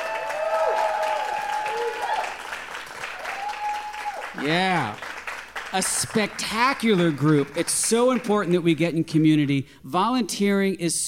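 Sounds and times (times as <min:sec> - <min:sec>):
audience whooping and cheering: 0:00.0 - 0:02.5, 0:03.1 - 0:04.4
audience at a live show applauding for volunteers: 0:00.0 - 0:08.6
speech: 0:04.4 - 0:05.1, 0:05.7 - 0:11.0.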